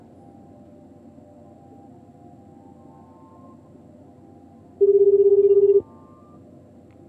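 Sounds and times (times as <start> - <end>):
telephone line ring through earpiece after dialing with alternative dialing machine: 4.8 - 6.4.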